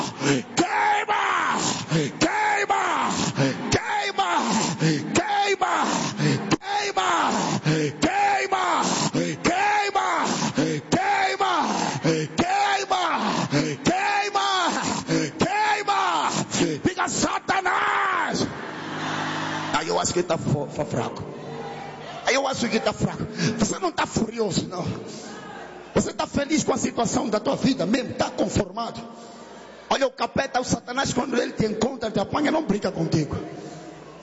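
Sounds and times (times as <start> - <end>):
crowd shouting and groaning in prayer: 0.0 - 20.3, 21.2 - 22.8
speech: 0.2 - 0.6, 20.2 - 21.4, 22.5 - 25.2, 26.0 - 29.3, 29.9 - 33.6.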